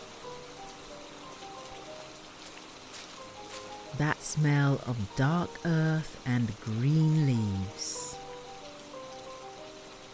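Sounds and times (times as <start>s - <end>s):
steady rain falling on the ground under a big broad-leaved tree: 0.0s - 10.1s
speech: 4.0s - 8.1s.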